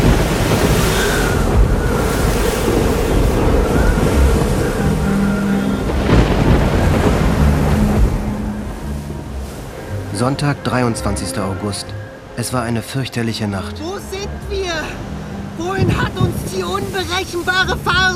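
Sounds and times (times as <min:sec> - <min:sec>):
crashing, surging waves in a storm at sea: 0:00.0 - 0:18.1
howling wind lashing a raft: 0:00.0 - 0:18.1
speech: 0:10.3 - 0:14.6, 0:15.9 - 0:18.1.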